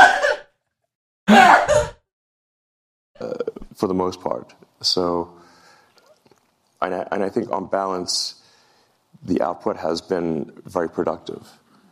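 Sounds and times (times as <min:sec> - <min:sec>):
woman coughing harshly: 0:00.0 - 0:00.5, 0:01.3 - 0:02.0
speech: 0:03.8 - 0:05.5, 0:06.8 - 0:08.4, 0:09.2 - 0:11.6.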